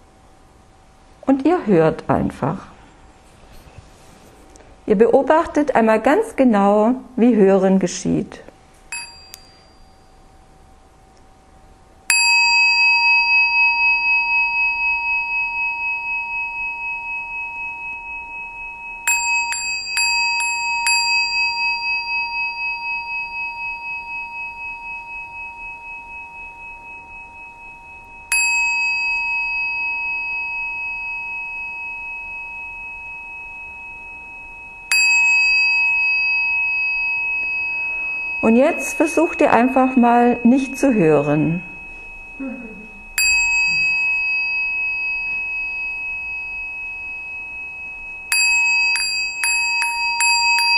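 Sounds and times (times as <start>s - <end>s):
speech: 1.3s - 2.7s, 4.9s - 8.4s, 38.6s - 41.7s
small hand bell being rung: 8.9s - 10.4s, 12.1s - 50.7s.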